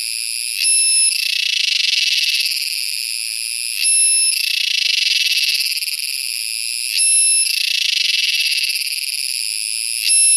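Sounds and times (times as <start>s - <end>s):
Purana sagittata cicada buzzing song: 0.0s - 2.8s, 3.7s - 6.2s, 6.8s - 10.3s.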